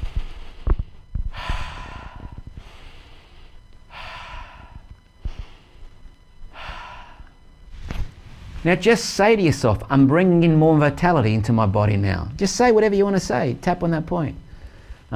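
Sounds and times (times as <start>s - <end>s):
deep breaths during a tapping exercise: 0.0s - 8.7s, 14.4s - 15.1s
speech: 8.6s - 14.4s.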